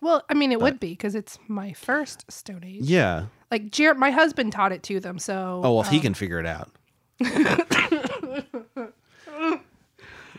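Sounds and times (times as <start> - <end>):
speech: 0.0 - 8.6
person coughing while trying to laugh: 7.2 - 8.4
person laughing with choppy voiced laughter: 7.2 - 9.6.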